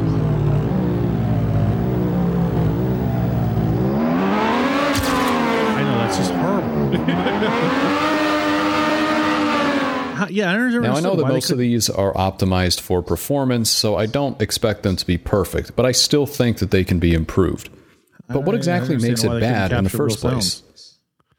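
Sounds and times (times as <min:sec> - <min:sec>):
simulated car engine revving: 0:00.0 - 0:10.3
laughter: 0:05.8 - 0:09.5
speech: 0:10.4 - 0:20.9.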